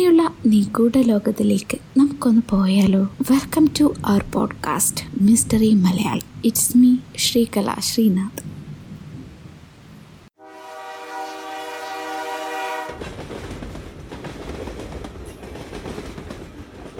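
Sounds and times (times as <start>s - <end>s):
speech: 0.0s - 8.5s
train travelling at night through stormy weather, rumbling on rails: 0.1s - 16.9s
train horn blast: 10.4s - 13.2s.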